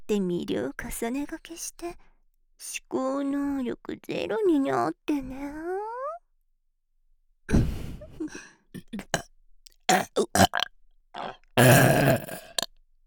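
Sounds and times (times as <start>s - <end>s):
speech: 0.1s - 5.9s, 7.5s - 9.2s, 9.9s - 12.4s
loud burps: 8.8s - 9.2s, 9.9s - 12.7s.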